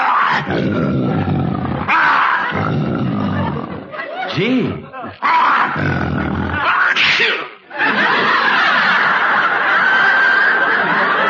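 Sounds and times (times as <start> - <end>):
lion roaring: 0.2 - 3.9, 5.6 - 6.8
speech: 0.3 - 2.9, 4.4 - 7.4
laughter: 1.1 - 6.6, 7.6 - 11.2.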